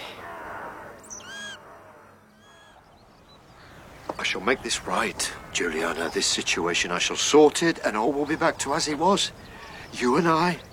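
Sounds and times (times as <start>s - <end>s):
flock of birds calling: 0.0s - 10.7s
speech: 4.3s - 10.7s.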